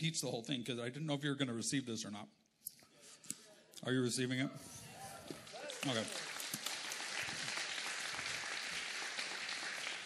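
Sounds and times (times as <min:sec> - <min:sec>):
speech: 0:00.0 - 0:02.5, 0:03.8 - 0:04.9, 0:05.8 - 0:06.2
audience clapping: 0:05.2 - 0:10.0.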